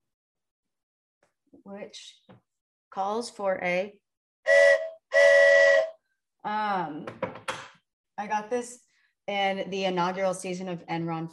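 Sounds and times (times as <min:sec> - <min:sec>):
speech: 0:01.6 - 0:04.7, 0:06.4 - 0:07.4, 0:08.2 - 0:11.3
handheld souvenir ballpark train whistle blasts: 0:04.5 - 0:06.0.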